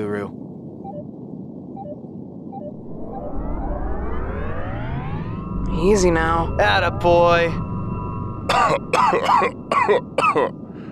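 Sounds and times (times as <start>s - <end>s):
speech: 0.0s - 0.5s, 5.8s - 7.7s, 8.5s - 10.6s
faint hum: 0.0s - 10.9s
person coughing and clearing throat: 8.5s - 10.6s.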